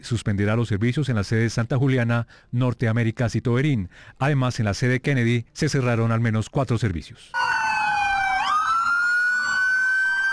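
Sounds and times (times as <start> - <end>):
speech: 0.0 - 7.6
ambulance sirens: 7.4 - 10.3.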